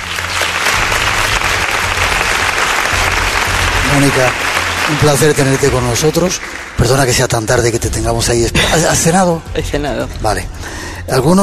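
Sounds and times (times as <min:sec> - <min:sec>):
audience applause: 0:00.0 - 0:07.8
speech: 0:03.9 - 0:11.4.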